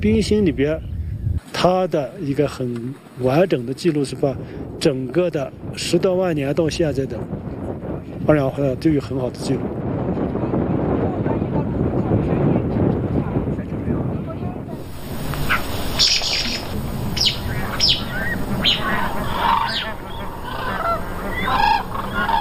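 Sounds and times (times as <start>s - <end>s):
speech: 0.0s - 0.9s, 1.5s - 7.4s, 8.2s - 9.7s
low rumbling noise: 5.4s - 22.3s
lost black-necked crane chick urgent calling: 14.9s - 22.3s.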